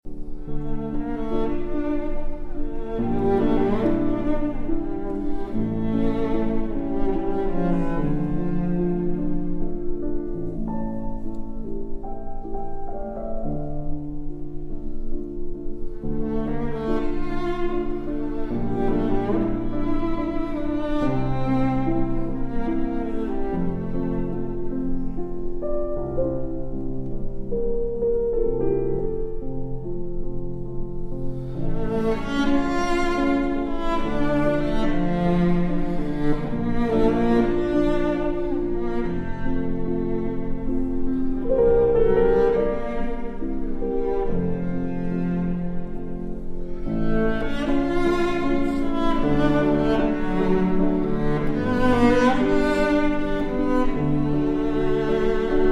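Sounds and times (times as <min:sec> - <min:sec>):
serenade for cello and piano: 0:00.0 - 0:55.7.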